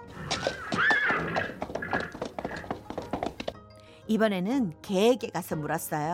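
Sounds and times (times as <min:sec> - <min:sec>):
hooves of several agitated horses stamping on the ground: 0:00.0 - 0:03.6
horse whinnying: 0:00.1 - 0:03.4
speech: 0:04.1 - 0:06.1.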